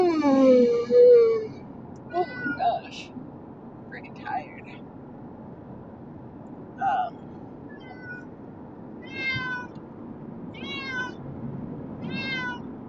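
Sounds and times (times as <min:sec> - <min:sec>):
steady low rumbling during a car ride: 0:00.0 - 0:12.8
cat meowing during a car ride: 0:02.2 - 0:02.7, 0:07.7 - 0:08.3, 0:09.0 - 0:09.7, 0:10.6 - 0:11.2, 0:12.0 - 0:12.6.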